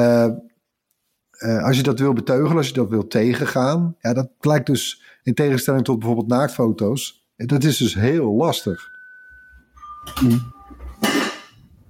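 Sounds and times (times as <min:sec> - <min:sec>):
speech: 0:00.0 - 0:00.4, 0:01.4 - 0:09.0, 0:10.0 - 0:11.2
two-tone doorbell chime: 0:08.5 - 0:11.1.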